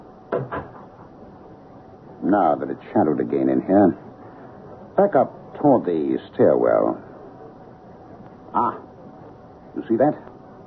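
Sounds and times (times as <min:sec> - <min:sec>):
faint room noise: 0:00.0 - 0:10.6
doors shutting with a dull solid thud: 0:00.3 - 0:01.1
speech: 0:00.4 - 0:00.7, 0:02.2 - 0:04.1, 0:05.0 - 0:07.1, 0:08.5 - 0:08.8, 0:09.8 - 0:10.3.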